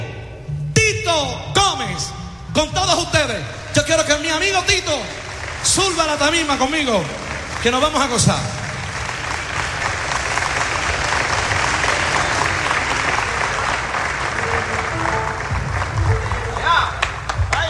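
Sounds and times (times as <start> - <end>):
speech: 1.1 - 8.6
applause from a large audience: 4.6 - 17.6.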